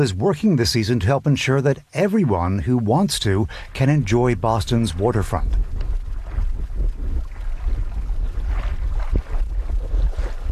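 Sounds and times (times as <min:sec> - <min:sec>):
speech: 0:00.0 - 0:05.7
water lapping against the side of a sailboat on the Charles River in Boston: 0:00.0 - 0:10.5
low rumble of wind buffeting the microphone: 0:03.2 - 0:10.5.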